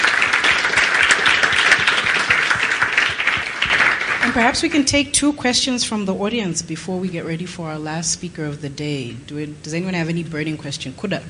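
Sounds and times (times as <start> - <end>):
audience applauding for panelists: 0.0 - 4.8
speech: 4.4 - 11.2.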